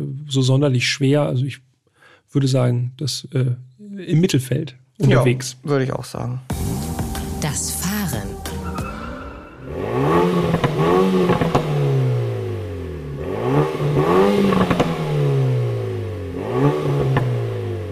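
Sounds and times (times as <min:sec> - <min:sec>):
speech: 0:00.0 - 0:01.7, 0:02.3 - 0:06.7, 0:07.4 - 0:08.3
compact sports hatchback engine revving hard in sportier driving mode: 0:06.5 - 0:17.9
sports hatchback sharp crackling exhaust pops and bangs: 0:10.4 - 0:11.8.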